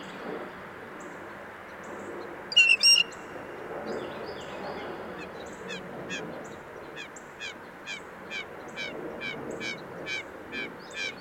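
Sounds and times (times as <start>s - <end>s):
steady low hum of traffic: 0.0s - 11.1s
Blue Jays scolding and hissing while mobbing a Red-shouldered Hawk in west Dyke Marsh: 2.6s - 3.1s.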